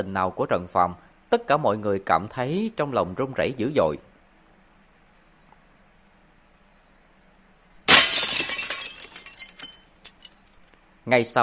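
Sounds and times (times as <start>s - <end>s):
speech: 0.0s - 4.1s, 11.1s - 11.4s
window glass shattering from a gunshot: 7.8s - 10.6s
glass shards tinkling as they fall to the ground: 7.9s - 10.6s.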